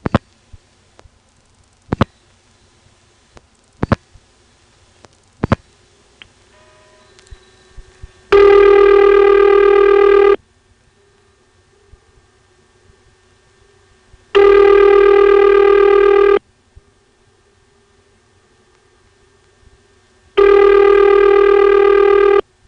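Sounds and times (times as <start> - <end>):
telephone ring from the Ladysmith exchange: 8.3 - 10.4, 14.4 - 16.4, 20.4 - 22.4.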